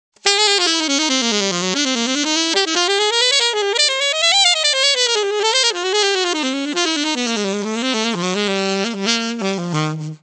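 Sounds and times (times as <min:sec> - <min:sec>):
alto saxophone: 0:00.2 - 0:10.2.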